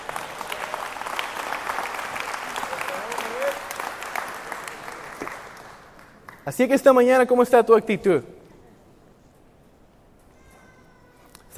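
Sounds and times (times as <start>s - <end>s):
audience applause: 0.0s - 6.4s
speech: 6.5s - 8.3s.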